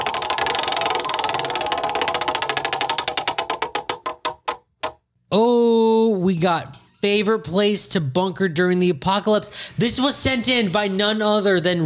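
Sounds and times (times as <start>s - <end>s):
prize wheel spinning with rapid clicking ticks: 0.0s - 5.0s
speech: 5.3s - 5.5s, 6.2s - 11.8s.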